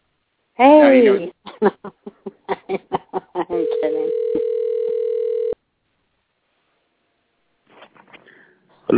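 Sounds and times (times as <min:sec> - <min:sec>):
speech: 0:00.6 - 0:02.4
laughter: 0:01.4 - 0:04.0
telephone ringback tone: 0:03.6 - 0:05.6.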